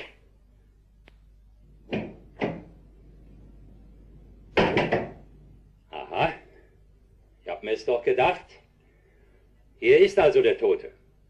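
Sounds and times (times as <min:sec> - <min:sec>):
knocking on a wooden house door: 0:04.6 - 0:05.2
speech: 0:04.8 - 0:05.2, 0:07.8 - 0:08.6, 0:09.8 - 0:11.0.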